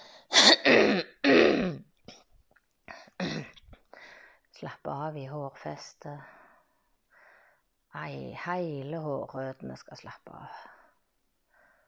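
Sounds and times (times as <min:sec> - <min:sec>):
person clearing throat: 0:00.3 - 0:01.9, 0:03.2 - 0:03.6
speech: 0:04.6 - 0:06.4, 0:07.9 - 0:10.8.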